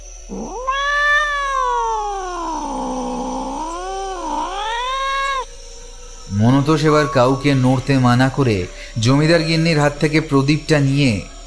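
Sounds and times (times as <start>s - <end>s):
speech: 0.3s - 0.6s, 6.6s - 11.3s
black cat giving a long drawn-out meow: 0.3s - 5.5s.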